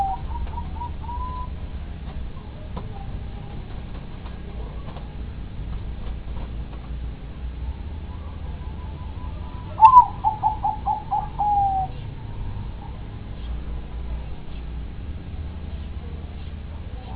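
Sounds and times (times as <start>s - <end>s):
dove song with sharp coo and quick hoots: 0.0s - 1.6s, 8.0s - 13.0s
constant low hum: 0.0s - 17.1s.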